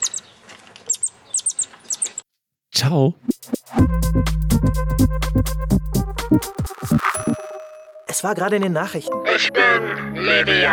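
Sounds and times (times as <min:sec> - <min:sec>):
baby coatis squeaking: 0:00.0 - 0:02.2
speech: 0:02.8 - 0:05.8, 0:08.2 - 0:10.7.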